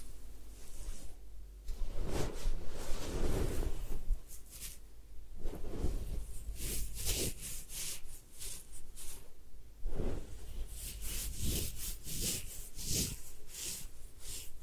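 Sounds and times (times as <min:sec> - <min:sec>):
rustling and scraping at the ear during ear cleaning: 0:00.6 - 0:04.8, 0:05.4 - 0:09.3, 0:09.9 - 0:14.6.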